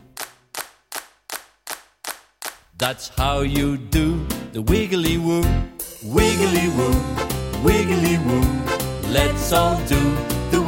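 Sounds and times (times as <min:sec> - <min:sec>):
hands clapping: 0:00.0 - 0:02.8
speech: 0:02.8 - 0:10.4.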